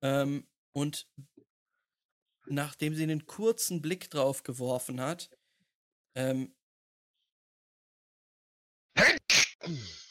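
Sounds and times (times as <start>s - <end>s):
speech: 0.0s - 1.3s, 2.5s - 5.4s, 6.1s - 6.6s, 9.7s - 10.0s
sneeze: 9.0s - 10.0s.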